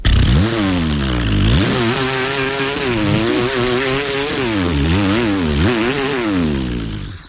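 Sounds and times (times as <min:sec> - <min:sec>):
person imitating a chainsaw with their voice: 0:00.0 - 0:07.2.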